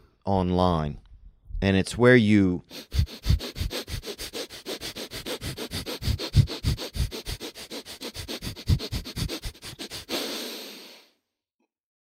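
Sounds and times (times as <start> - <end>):
speech: 0.3 - 1.0, 1.6 - 3.3
Breath of Fire breathing, rapid forceful inhales through the nose: 2.7 - 11.2.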